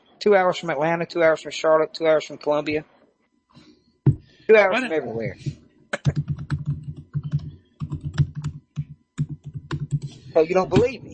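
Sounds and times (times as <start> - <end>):
speech: 0.2 - 2.9, 4.5 - 6.2, 10.4 - 11.1
computer keyboard tapping: 6.0 - 10.1.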